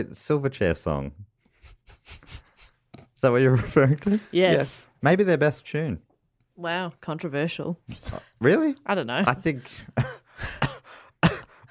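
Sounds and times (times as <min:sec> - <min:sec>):
speech: 0:00.0 - 0:01.3, 0:02.1 - 0:02.4, 0:03.2 - 0:06.0, 0:06.6 - 0:10.5
person coughing: 0:10.0 - 0:11.7.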